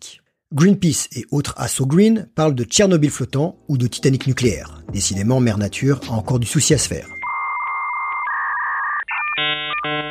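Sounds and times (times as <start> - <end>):
speech: 0.5 - 7.2
56K dial-up modem connecting: 7.1 - 10.0.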